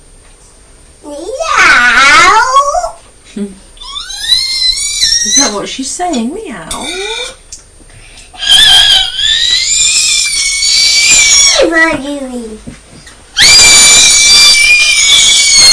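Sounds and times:
young child screaming in shrill bursts: 1.3 - 3.0, 3.8 - 5.6, 8.4 - 12.0, 13.4 - 15.7
speech: 5.6 - 7.4, 11.7 - 12.8.

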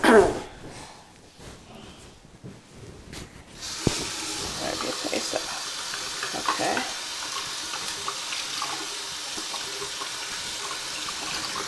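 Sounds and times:
speech: 0.1 - 0.4
water running from a tap: 3.6 - 11.6.

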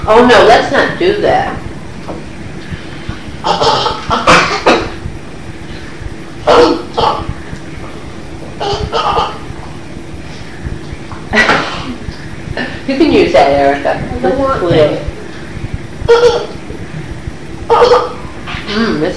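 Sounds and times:
speech: 0.1 - 1.6, 3.4 - 3.8, 12.9 - 15.1, 16.1 - 16.5, 18.7 - 19.1
child coughing and sputtering on food and milk: 3.5 - 5.0, 6.4 - 7.4, 8.6 - 9.5, 11.4 - 12.1, 16.1 - 16.6, 17.7 - 18.2.

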